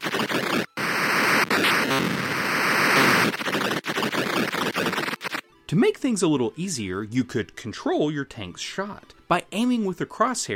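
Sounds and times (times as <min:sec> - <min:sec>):
video game static hiss with crackling interference: 0:00.0 - 0:05.4
speech: 0:05.7 - 0:10.5.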